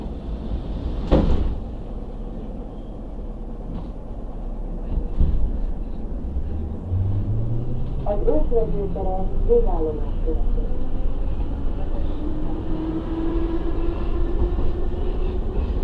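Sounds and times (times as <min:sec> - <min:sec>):
steady low rumble of a train carriage interior: 0:00.0 - 0:15.8
train doors banging shut: 0:00.8 - 0:01.8
speech: 0:08.1 - 0:10.8.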